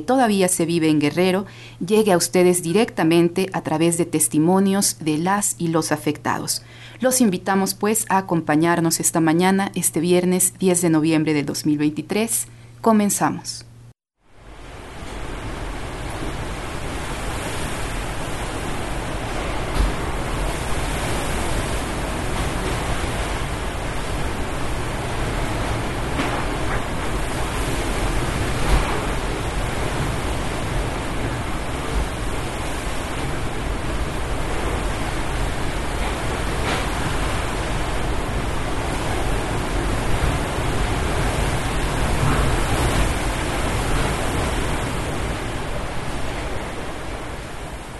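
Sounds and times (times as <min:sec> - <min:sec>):
speech: 0:00.0 - 0:13.7
hurricane-force wind roaring: 0:14.2 - 0:47.9.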